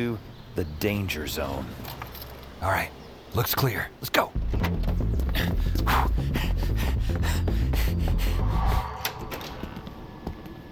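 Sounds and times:
speech: 0:00.0 - 0:02.0, 0:02.6 - 0:05.0
heavy rumbling noise: 0:04.4 - 0:10.7.

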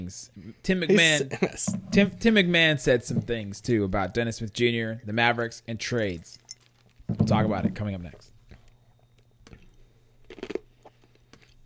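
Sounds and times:
speech: 0:00.1 - 0:06.4, 0:07.1 - 0:08.3
chewing ice: 0:06.4 - 0:07.1, 0:08.4 - 0:11.6.

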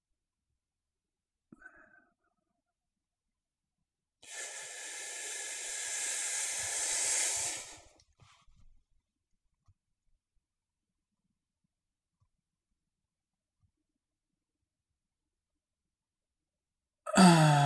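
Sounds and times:
soft breathy sounds: 0:01.5 - 0:02.6, 0:04.2 - 0:08.5, 0:17.1 - 0:17.6
long deep full inhale through the nose: 0:04.2 - 0:08.0.

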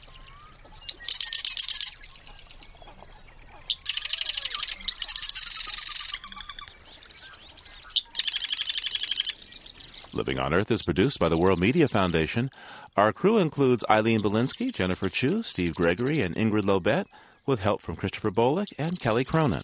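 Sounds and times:
marsh wren song on a cattail in a North Dakota wetland: 0:00.8 - 0:07.0, 0:07.6 - 0:10.3, 0:14.1 - 0:16.5, 0:18.6 - 0:19.6
speech: 0:10.2 - 0:19.6.

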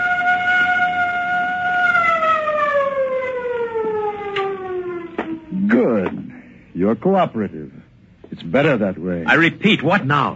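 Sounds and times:
wailing alarm siren: 0:00.0 - 0:06.1
speech: 0:06.8 - 0:07.8, 0:08.4 - 0:10.3.

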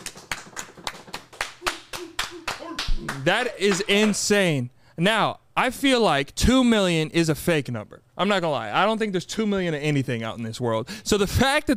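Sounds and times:
several people clapping in a burst of applause: 0:00.0 - 0:04.4
speech: 0:03.2 - 0:11.7.

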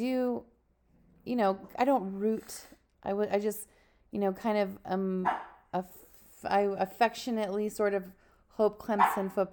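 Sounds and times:
speech: 0:00.0 - 0:00.5, 0:01.2 - 0:09.5
puppy barking at its reflection: 0:05.3 - 0:05.6, 0:09.0 - 0:09.3.

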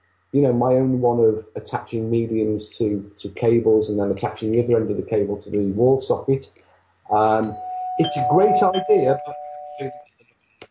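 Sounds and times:
speech: 0:00.3 - 0:10.0
electronic doorbell chiming: 0:07.4 - 0:10.0.

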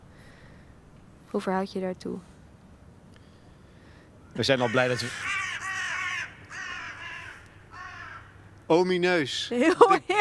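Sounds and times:
speech: 0:01.3 - 0:02.3, 0:04.4 - 0:05.4, 0:08.7 - 0:10.1
crows cawing: 0:03.7 - 0:08.7
laughter: 0:09.6 - 0:10.1.

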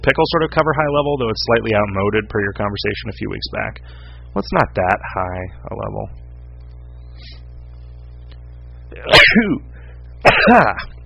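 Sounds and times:
speech: 0:00.0 - 0:06.2, 0:09.0 - 0:09.7, 0:10.3 - 0:10.9
person sneezing loudly: 0:09.0 - 0:10.9.

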